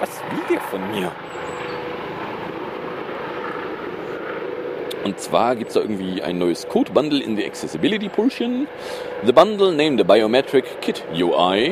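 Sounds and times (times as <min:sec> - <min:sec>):
speech: 0:00.0 - 0:01.5, 0:05.0 - 0:11.6
helicopter flying overhead: 0:00.0 - 0:11.6.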